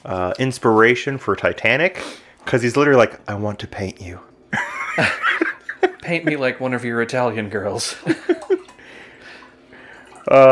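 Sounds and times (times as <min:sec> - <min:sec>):
speech: 0:00.0 - 0:04.3, 0:05.0 - 0:05.3, 0:06.0 - 0:08.4, 0:10.3 - 0:10.5
laughter: 0:04.6 - 0:06.6, 0:08.0 - 0:08.7
drink pouring into a glass: 0:08.0 - 0:10.5.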